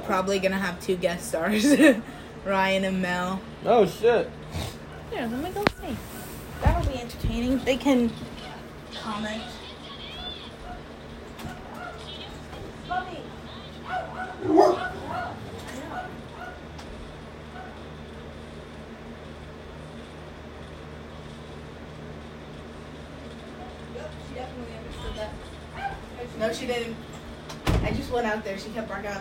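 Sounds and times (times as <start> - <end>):
speech: 0.1 - 8.3, 8.9 - 9.6, 26.5 - 27.1, 27.9 - 29.1
dog barking and yipping behind a closed door: 10.6 - 10.9, 11.5 - 12.1, 13.8 - 16.7, 17.5 - 17.9, 25.7 - 26.1.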